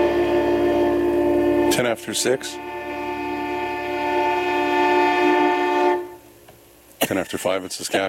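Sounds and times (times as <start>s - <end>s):
train horn sounding a sustained chord: 0.0s - 6.3s
speech: 1.8s - 2.8s, 7.1s - 8.0s.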